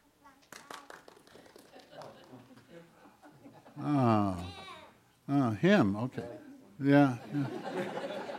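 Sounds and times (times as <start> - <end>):
crowd clapping to vote in a demonstration: 0.4 - 2.7
people laughing: 1.7 - 4.2, 7.1 - 8.3
speech: 3.8 - 4.6, 5.3 - 8.2.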